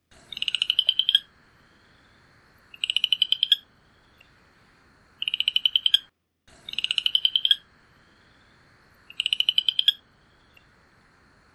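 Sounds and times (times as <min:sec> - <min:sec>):
small frog calling in high pulsed trills: 0:00.2 - 0:01.3, 0:02.7 - 0:03.7, 0:05.2 - 0:07.7, 0:09.1 - 0:10.0.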